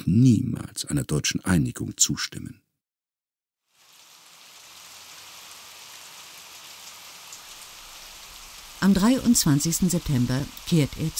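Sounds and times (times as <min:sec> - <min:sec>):
speech: 0:00.0 - 0:02.6, 0:08.8 - 0:11.1
rain drumming on city streets: 0:03.7 - 0:11.1.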